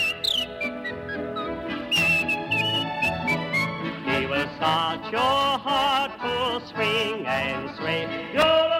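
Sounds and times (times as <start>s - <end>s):
person whistling a bouncy polka melody: 0.0s - 3.8s
speech: 4.6s - 8.7s.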